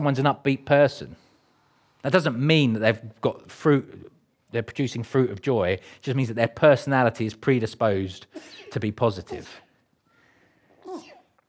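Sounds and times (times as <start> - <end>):
speech: 0.0 - 1.2, 2.0 - 9.6
person sneezing: 8.3 - 9.6, 10.8 - 11.3.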